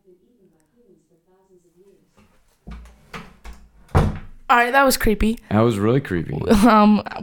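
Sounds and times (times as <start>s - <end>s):
heavy door swinging shut: 2.7s - 4.5s
smart speaker voice talking: 4.5s - 7.2s
speech: 4.5s - 7.2s.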